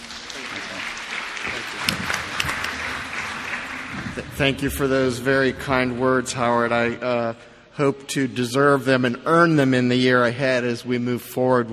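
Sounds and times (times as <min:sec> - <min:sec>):
audience at a panel event applauding: 0:00.0 - 0:05.9
speech: 0:01.5 - 0:02.1, 0:04.2 - 0:11.7.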